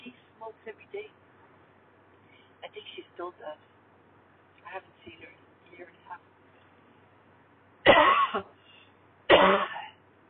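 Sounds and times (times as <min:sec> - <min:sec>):
speech: 0:03.2 - 0:03.8
person with a tickle in the throat clearing it with harsh coughs: 0:07.9 - 0:08.6, 0:09.3 - 0:10.0.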